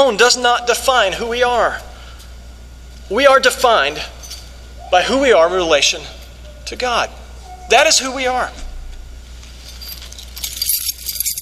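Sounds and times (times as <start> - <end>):
speech: 0.0 - 1.9, 3.1 - 4.2, 4.9 - 8.6
house and car keys jingling on a shaken keychain: 4.2 - 4.5, 9.6 - 11.4.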